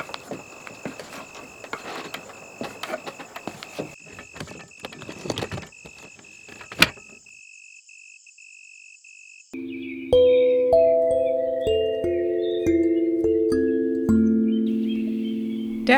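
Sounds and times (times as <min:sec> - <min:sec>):
wooden ladder creaking as two people climb it: 0:00.0 - 0:07.2
steady high tone: 0:09.6 - 0:15.9.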